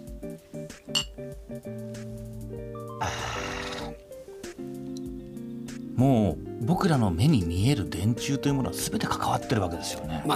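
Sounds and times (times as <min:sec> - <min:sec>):
glasses of whisky and water clinking in a toast: 0:00.9 - 0:01.2
speech: 0:01.2 - 0:03.6, 0:06.0 - 0:10.3.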